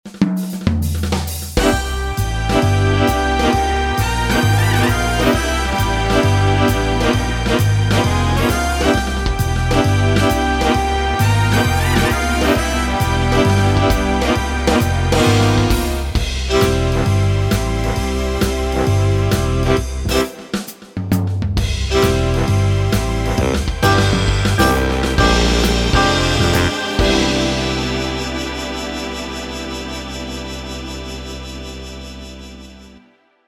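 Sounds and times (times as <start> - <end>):
orchestral big band music: 0.1 - 33.0.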